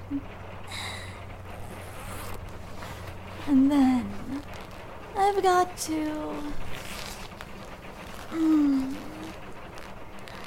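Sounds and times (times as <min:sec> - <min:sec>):
quiet hum: 0:00.0 - 0:10.4
speech: 0:00.1 - 0:00.4, 0:03.5 - 0:04.2, 0:05.2 - 0:06.7, 0:08.3 - 0:09.0
dress zipper sliding down: 0:01.5 - 0:04.8, 0:06.6 - 0:10.4.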